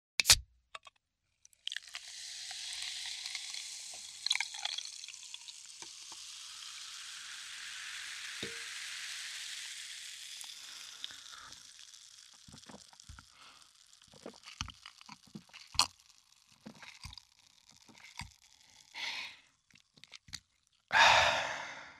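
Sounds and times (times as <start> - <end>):
bottle opening: 0.2 - 0.4, 1.7 - 7.2, 8.2 - 18.9
liquid pouring: 1.4 - 20.9
person drinking: 10.4 - 21.9
person exhaling: 19.0 - 19.4, 20.9 - 21.9.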